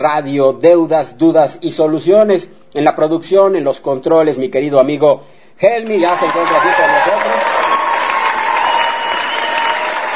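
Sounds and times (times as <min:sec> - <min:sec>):
speech: 0:00.0 - 0:07.5
studio audience clapping: 0:05.8 - 0:10.1.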